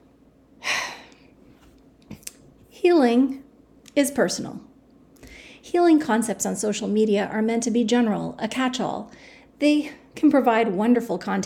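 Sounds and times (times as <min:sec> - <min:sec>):
speech: 0:02.8 - 0:03.4, 0:04.0 - 0:04.7, 0:05.6 - 0:11.4
deep breath: 0:05.2 - 0:05.6.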